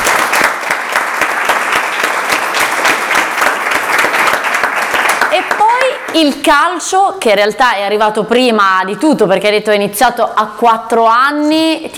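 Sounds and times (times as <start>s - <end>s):
audience applauding: 0.0s - 6.2s
speech: 6.2s - 11.9s.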